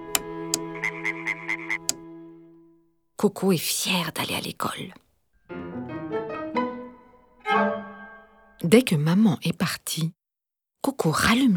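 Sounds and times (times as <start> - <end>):
frog alarm clock croaking: 0.2 - 2.0
speech: 3.2 - 5.0, 8.7 - 10.2, 10.8 - 11.5.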